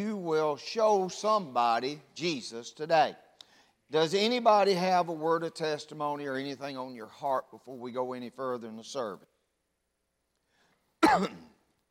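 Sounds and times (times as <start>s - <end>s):
speech: 0.0s - 3.2s, 3.9s - 9.3s, 11.1s - 11.5s
single short dry raspy cough: 11.0s - 11.6s.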